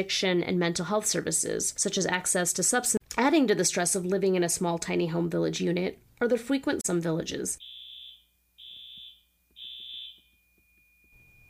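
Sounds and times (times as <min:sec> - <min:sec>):
speech: 0:00.0 - 0:07.7
smoke alarm beeping in shrill electronic bursts: 0:07.6 - 0:11.4.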